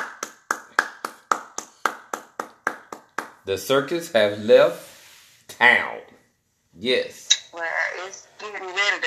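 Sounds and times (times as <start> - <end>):
hands clapping: 0.0 - 3.4
speech: 3.4 - 4.9, 5.6 - 6.1, 6.8 - 9.0.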